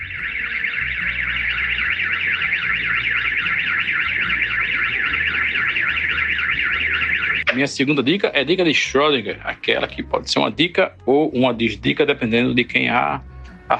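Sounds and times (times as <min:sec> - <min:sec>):
loud electronic car alarm at a home warbling: 0:00.0 - 0:09.3
speech: 0:07.6 - 0:13.7.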